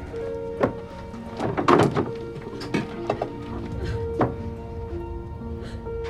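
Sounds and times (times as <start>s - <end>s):
blood-stained glass pickle jars clattering into a bin: 0.6s - 3.5s
low hum: 2.4s - 6.0s.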